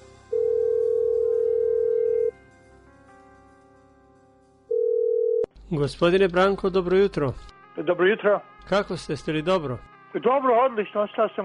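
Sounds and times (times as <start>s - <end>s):
telephone line tone while a call is placed: 0.4s - 2.3s, 4.7s - 5.5s
speech: 5.7s - 11.4s.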